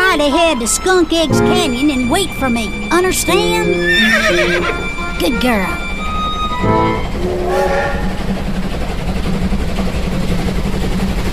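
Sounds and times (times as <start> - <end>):
train rumbling along rails: 0.0 - 11.3
speech: 0.2 - 5.8
train horn blasts: 1.3 - 8.3.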